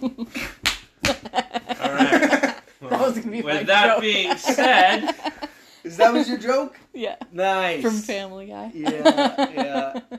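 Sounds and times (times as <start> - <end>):
laughter: 0.0 - 6.7, 8.8 - 10.1
open palm slaps on someone's behind: 0.4 - 1.3
speech: 3.4 - 10.1.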